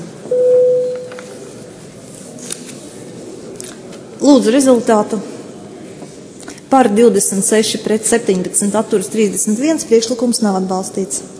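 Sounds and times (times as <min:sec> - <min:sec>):
electronic bell signal in a parliament chamber calling a vote: 0:00.3 - 0:01.2
speech: 0:04.2 - 0:05.3, 0:06.7 - 0:11.3.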